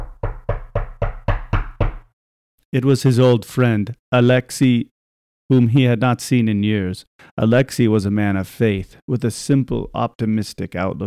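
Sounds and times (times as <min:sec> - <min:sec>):
firm knocks on a wooden door: 0:00.0 - 0:02.1
speech: 0:02.7 - 0:04.9, 0:05.5 - 0:11.0.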